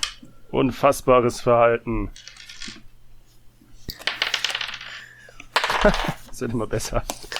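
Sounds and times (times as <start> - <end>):
speech: 0.5 - 2.8, 5.8 - 7.3
dice rolling across a hard table surface: 2.1 - 2.9, 3.9 - 6.4.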